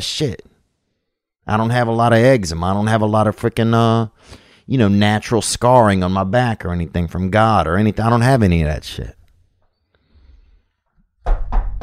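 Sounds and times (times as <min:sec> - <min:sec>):
speech: 0:00.0 - 0:00.5, 0:01.5 - 0:09.2
knocking on wood: 0:11.2 - 0:11.8.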